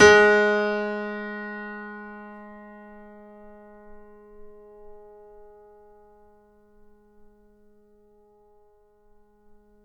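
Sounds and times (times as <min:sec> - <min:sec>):
grand piano G sharp 2 note played fortissimo: 0:00.0 - 0:05.0.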